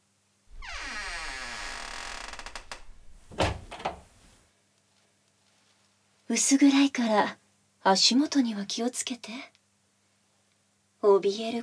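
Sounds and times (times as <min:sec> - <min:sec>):
heavy door creaking: 0:00.5 - 0:04.2
speech: 0:06.3 - 0:09.5, 0:11.0 - 0:11.6.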